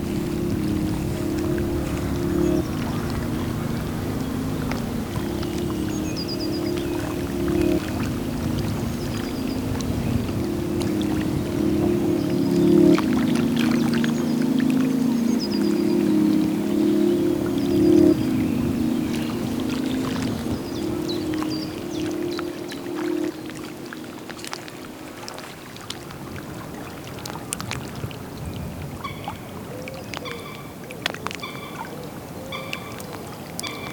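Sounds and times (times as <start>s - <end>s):
steady low hum: 0.0s - 26.1s
gentle lapping of lake water: 0.0s - 33.9s.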